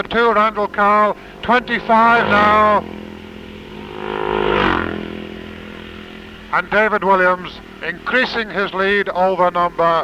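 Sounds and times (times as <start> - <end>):
speech: 0.0 - 3.0, 6.5 - 10.0
racing motorcycle roaring past the start line, changing gear: 0.3 - 9.1.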